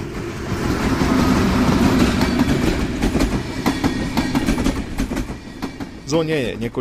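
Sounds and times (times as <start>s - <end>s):
train rolling past on a railway line by family houses and an industrial zone in Czechia: 0.0s - 6.7s
train wheels clacking over rail joints: 1.7s - 6.7s
speech: 6.1s - 6.7s.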